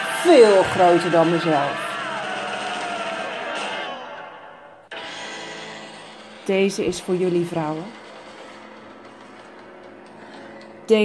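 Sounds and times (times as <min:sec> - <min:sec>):
woman screaming loudly: 0:00.0 - 0:04.5
speech: 0:00.2 - 0:01.9, 0:06.5 - 0:08.0.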